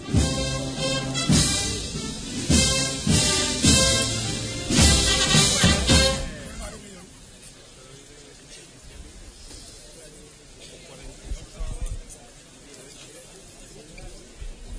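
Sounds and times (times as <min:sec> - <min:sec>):
procession brass band playing a slow stately hymn outdoors: 0:00.0 - 0:06.8
crowd ambience: 0:00.0 - 0:14.7.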